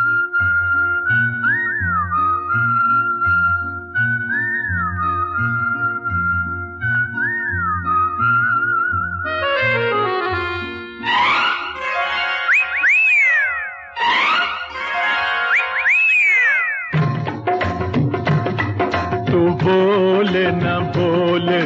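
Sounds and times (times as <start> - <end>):
whistled melody with warbling trills: 0.0 - 17.4
rhythmic musical backing: 9.2 - 21.6.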